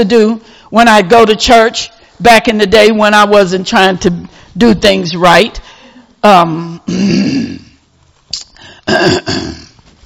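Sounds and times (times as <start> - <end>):
speech: 0.0 - 7.6, 8.3 - 9.6
person clearing throat: 6.9 - 7.8, 8.8 - 9.8.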